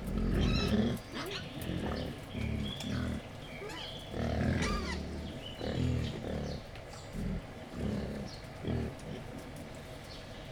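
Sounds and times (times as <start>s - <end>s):
captive wild boar grunting excitedly before feeding: 0.0s - 3.4s, 4.1s - 9.3s
captive wild boar squealing and chirping before feeding: 4.6s - 5.0s.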